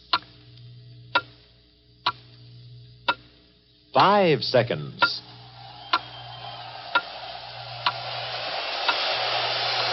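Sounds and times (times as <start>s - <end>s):
low steady hum: 0.0s - 9.9s
clock ticking: 1.1s - 1.4s, 2.0s - 2.3s, 3.0s - 3.4s, 4.9s - 6.0s
speech: 4.0s - 5.3s.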